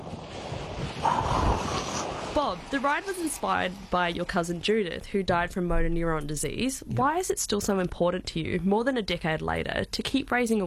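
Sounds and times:
wind blowing: 0.0s - 7.1s
speech: 2.4s - 10.6s.

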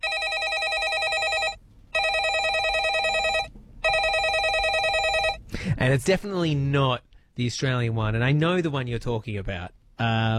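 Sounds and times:
landline telephone ringing: 0.0s - 5.4s
speech: 5.8s - 10.3s.

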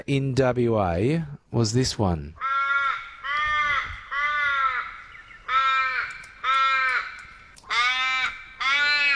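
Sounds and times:
speech: 0.0s - 2.5s
raven cawing: 2.4s - 9.1s.

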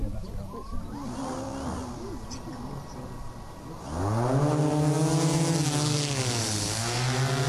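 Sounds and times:
faint voices: 0.0s - 4.5s
drone motors whining as it lifts off during a demonstration: 0.0s - 7.4s.

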